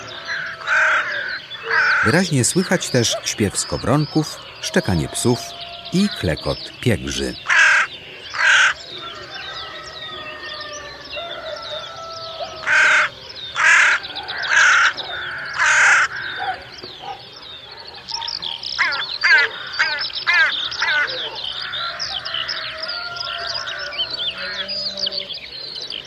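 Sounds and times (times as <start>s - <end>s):
crow calling with loud hoarse caws: 0.0s - 2.3s, 7.4s - 9.3s, 12.6s - 16.6s, 18.8s - 24.7s
speech: 2.0s - 7.5s.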